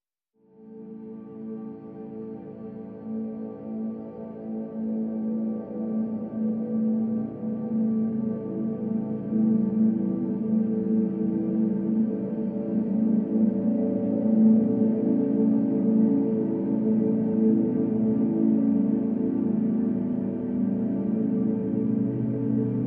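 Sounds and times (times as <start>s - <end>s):
synthesizer pad: 0.5s - 22.8s.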